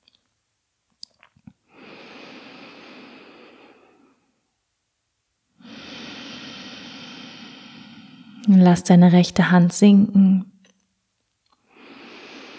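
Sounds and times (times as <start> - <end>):
airy nasal breathing during an alternate-nostril breathing exercise: 1.7 - 4.3, 5.6 - 8.5, 11.7 - 12.5
speech: 8.4 - 10.5.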